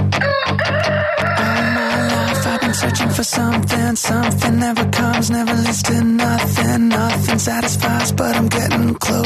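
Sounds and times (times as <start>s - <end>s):
rooster crowing: 0.2s - 3.2s
speech: 4.0s - 9.2s.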